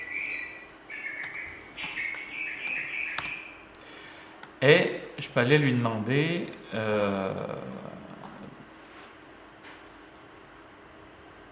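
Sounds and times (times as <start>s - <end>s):
birds chirping: 0.0s - 4.0s
sharp clicks or taps: 1.2s - 3.4s
speech: 4.6s - 8.0s.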